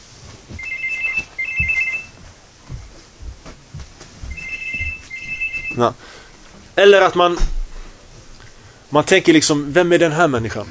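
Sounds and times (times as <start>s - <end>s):
shuffling in a noisy room: 0.0s - 8.7s
mobile phone warbling electronic ringtone: 0.6s - 2.2s, 4.3s - 5.9s
speech: 5.8s - 6.2s, 6.8s - 7.6s, 8.9s - 10.7s.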